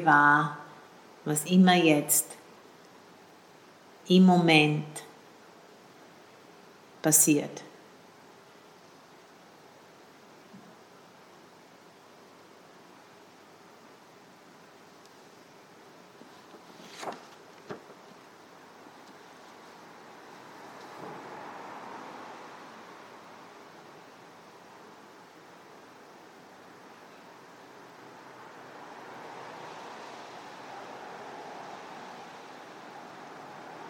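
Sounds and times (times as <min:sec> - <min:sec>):
speech: 0:00.0 - 0:00.6, 0:01.2 - 0:02.4, 0:04.1 - 0:05.1, 0:07.0 - 0:07.7
traffic with cars passing outside: 0:18.3 - 0:33.8.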